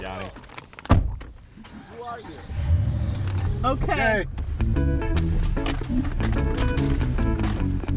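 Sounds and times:
truck engine rumbling as the truck pulls away: 0.0 - 7.8
car door shutting: 0.6 - 4.6
speech: 3.6 - 5.0, 5.9 - 7.0.

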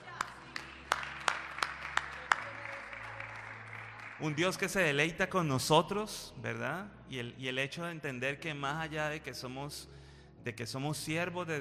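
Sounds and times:
hands clapping in a steady rhythm: 0.0 - 4.8
speech: 4.2 - 11.5.

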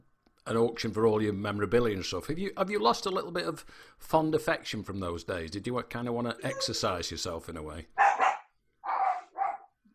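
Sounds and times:
speech: 0.5 - 8.2
dogs barking: 8.0 - 9.7.

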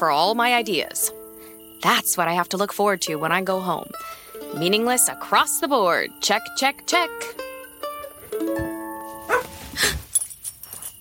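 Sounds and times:
speech: 0.0 - 1.2, 1.8 - 7.4
dog barking: 9.2 - 9.6
dog whining: 9.2 - 10.0.

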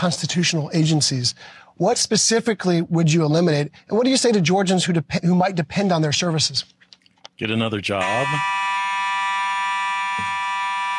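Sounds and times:
speech: 0.0 - 6.8, 7.4 - 8.6
fire alarm blaring in a studio: 8.0 - 10.9.

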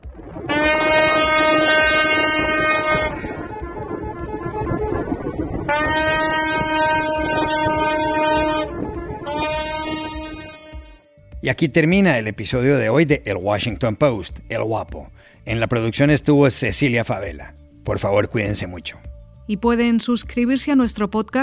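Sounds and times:
low rumble of ship engines: 0.0 - 10.7
horns of waiting ships at a canal blaring in celebration: 0.2 - 11.3
speech: 11.5 - 21.4.

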